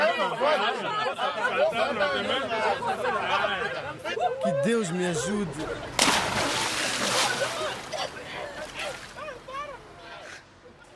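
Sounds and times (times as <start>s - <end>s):
laughter: 0.0s - 9.6s
speech: 1.6s - 3.4s, 4.3s - 6.7s
rough sea water churning and splashing as a man swims against big waves: 5.6s - 9.5s.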